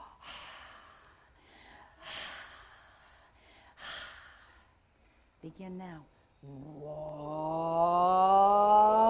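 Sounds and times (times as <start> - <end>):
deep breaths before a vocal warm-up: 0.0 - 5.4
speech: 5.4 - 8.9.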